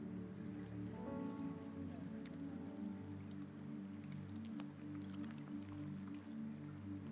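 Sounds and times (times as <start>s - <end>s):
steady low hum: 0.0s - 7.1s
sealed communion cups being peeled open crackling: 2.1s - 7.1s.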